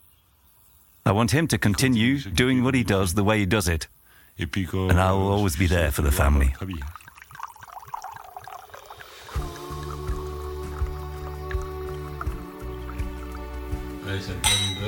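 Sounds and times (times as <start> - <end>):
speech: 1.1 - 7.0, 14.1 - 14.8
soft dripping and liquid sounds: 5.4 - 14.8
wine glasses clinking in a toast: 6.8 - 9.1, 14.3 - 14.8.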